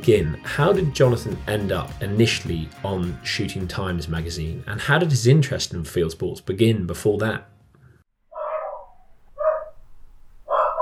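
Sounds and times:
speech: 0.0s - 7.5s
dogs barking: 8.4s - 9.8s, 10.5s - 10.8s.

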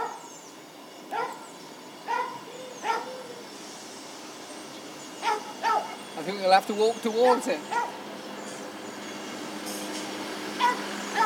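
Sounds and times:
steady outdoor hiss: 0.0s - 11.2s
dog giving short whiny barks and yelps: 1.1s - 1.4s, 2.1s - 3.2s, 5.2s - 6.0s, 7.3s - 8.0s, 10.6s - 11.2s
speech: 6.2s - 7.8s.

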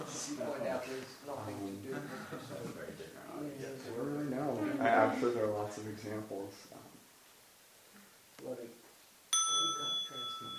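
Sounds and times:
speech: 0.4s - 6.9s
bright bell ringing with sustained metallic tone: 9.3s - 10.5s.

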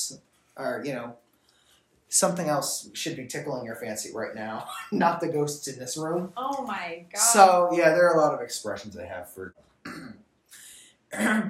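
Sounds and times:
speech: 0.1s - 1.3s, 2.1s - 10.0s, 11.1s - 11.4s
person clearing throat: 9.9s - 10.2s, 11.1s - 11.4s.

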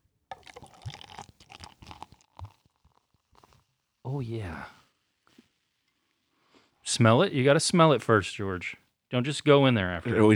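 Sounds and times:
old-fashioned cream soda being poured: 0.3s - 6.2s
speech: 4.1s - 4.8s, 7.0s - 10.3s.

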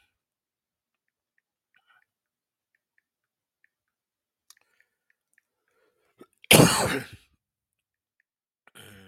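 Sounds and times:
faint mouth clicks: 1.0s - 6.6s
single loud harsh cough: 6.5s - 7.2s.

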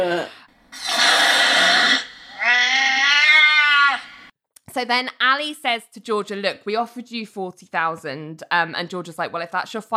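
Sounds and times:
speech: 0.0s - 0.9s, 4.8s - 9.9s
cat hissing: 0.7s - 4.3s
cat yowling: 1.7s - 4.3s.

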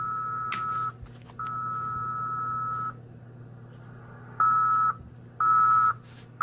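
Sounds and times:
1 kHz tone sending very slow QRSS Morse code: 0.0s - 3.0s, 4.4s - 6.4s.

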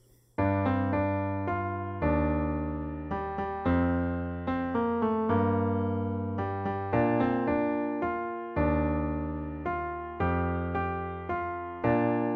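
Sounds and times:
musical theme in three-four time on a keyboard-like instrument: 0.4s - 12.3s.

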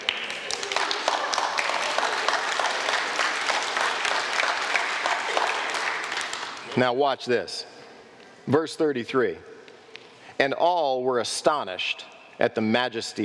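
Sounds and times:
audience applauding: 0.0s - 6.8s
speech: 6.8s - 7.7s, 8.4s - 9.5s, 10.4s - 13.2s.

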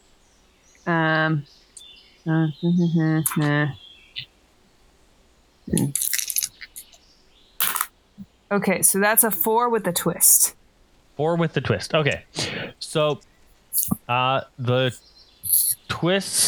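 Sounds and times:
speech: 0.9s - 1.6s, 2.2s - 4.3s, 5.7s - 6.1s, 8.5s - 10.6s, 11.2s - 16.4s
dice clattering across a hard table: 5.8s - 6.9s, 7.6s - 7.9s.

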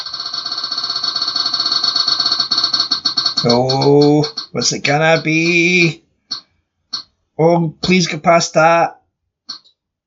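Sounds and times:
bright ringing tone from a spinning prize wheel: 0.0s - 7.1s
prize wheel spinning with rapid ticking whir and ringing tone: 0.0s - 7.1s
speech: 3.4s - 6.0s, 7.4s - 9.0s.

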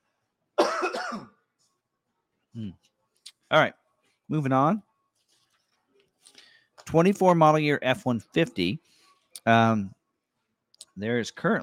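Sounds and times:
person clearing throat or coughing: 0.6s - 1.4s
speech: 1.1s - 1.4s, 2.6s - 2.9s, 3.5s - 4.9s, 6.9s - 10.0s, 11.0s - 11.6s.

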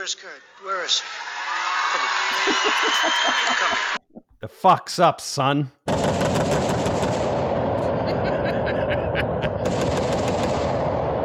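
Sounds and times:
speech: 0.0s - 6.3s
laughter: 1.7s - 5.2s, 7.8s - 9.7s
machine gun fire: 5.9s - 8.2s, 9.3s - 11.2s.

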